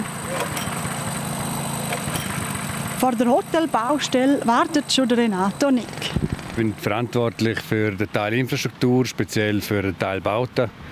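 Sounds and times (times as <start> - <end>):
heavy diesel engines of excavators and trucks idling at a construction site: 0.0 - 8.2
speech: 3.0 - 10.8.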